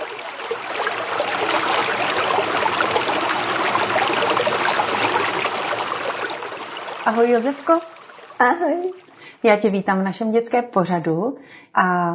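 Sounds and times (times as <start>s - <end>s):
flowing river water rushing and babbling: 0.0s - 9.4s
speech: 7.1s - 12.1s.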